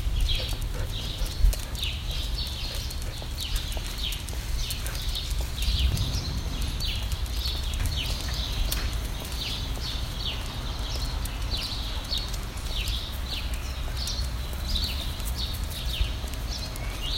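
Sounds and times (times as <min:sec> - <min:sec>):
bird chirping: 0:00.1 - 0:17.1
scattered clicks: 0:00.2 - 0:17.1
loud steady low rumble: 0:05.5 - 0:11.2.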